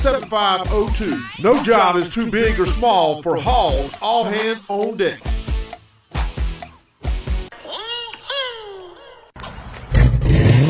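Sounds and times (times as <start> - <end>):
speech: 0.0 - 5.4
car engine revving through a custom exhaust: 9.8 - 10.6.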